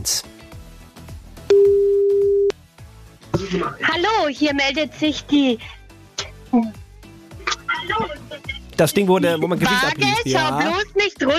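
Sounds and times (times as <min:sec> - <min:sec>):
speech: 0:00.0 - 0:00.3, 0:03.5 - 0:05.8, 0:06.5 - 0:06.8, 0:08.8 - 0:11.3
steady electronic outgoing phone call tone: 0:01.5 - 0:02.5
quieter rhythmic music: 0:03.0 - 0:11.3.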